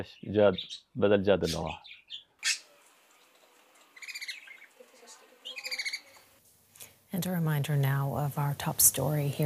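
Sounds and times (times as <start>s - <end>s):
speech: 0.0s - 2.2s, 7.1s - 9.4s
pet bird voice-like calls: 0.0s - 2.7s, 3.9s - 6.2s
pet bird chirping: 0.0s - 6.3s.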